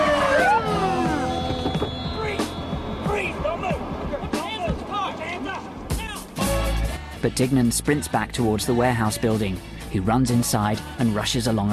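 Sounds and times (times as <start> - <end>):
police sirens wailing: 0.0 - 6.3
speech: 7.2 - 11.7.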